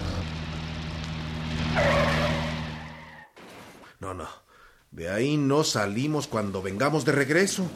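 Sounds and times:
car engine droning going down a steep muddy slope in an alley: 0.0 - 3.4
car tires skidding and slipping in mud on a steep slope: 0.0 - 3.8
speech: 4.1 - 7.7.

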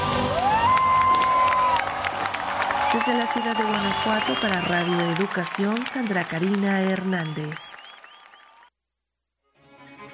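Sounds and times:
large concert audience cheering and shouting: 0.2 - 8.7
scattered whistles from concert audience: 2.8 - 5.2, 7.2 - 8.7
speech: 3.3 - 7.7.

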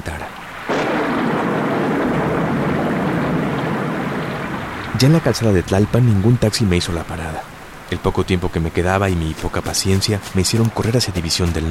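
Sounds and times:
pouring rain: 0.0 - 11.6
rumbling thunder: 0.6 - 7.9
speech: 5.0 - 11.6.

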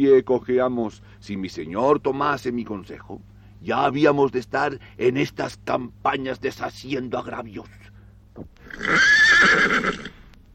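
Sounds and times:
speech: 0.0 - 7.8, 8.4 - 10.0
horse whinnying: 8.5 - 10.3.

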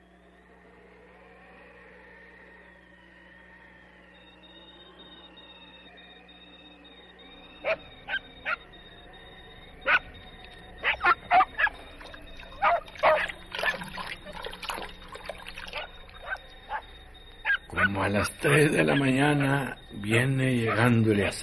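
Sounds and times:
dog barking: 7.6 - 8.6, 9.8 - 10.1, 10.8 - 11.8, 12.5 - 14.4, 15.7 - 18.0
speech: 18.1 - 21.4.

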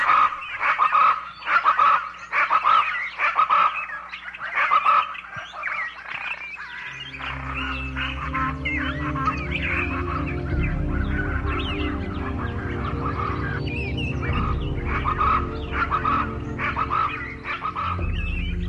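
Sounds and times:
pájaro brujo bird singing honking calls on a branch: 0.0 - 18.6
low steady drone: 6.7 - 18.6.

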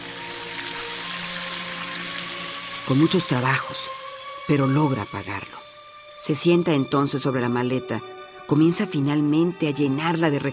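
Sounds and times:
water spraying from a hose: 0.0 - 5.6
speech: 2.9 - 5.6, 6.2 - 10.5.

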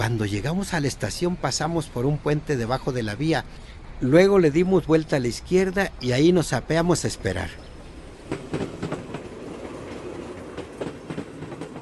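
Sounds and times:
speech: 0.0 - 7.6
train rolling along railway tracks: 0.0 - 11.8
train wheels clickety-clack over rail joints: 7.0 - 11.8.

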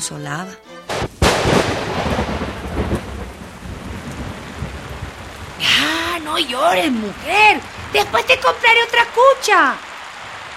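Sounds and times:
speech: 0.0 - 1.2, 5.6 - 9.9
dense roar of pouring rain: 0.8 - 10.5
loud cracks of thunder: 0.9 - 9.1.

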